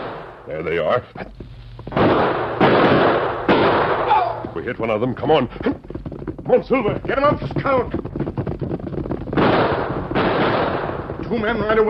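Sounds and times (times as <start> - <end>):
gunshots fired from a clump of trees: 0.0 - 0.4, 1.9 - 4.9, 7.1 - 11.8
speech: 0.5 - 2.6, 4.5 - 8.1, 11.3 - 11.8.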